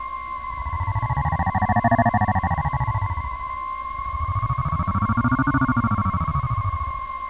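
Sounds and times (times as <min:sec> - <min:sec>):
alien ambience: 0:00.0 - 0:07.2.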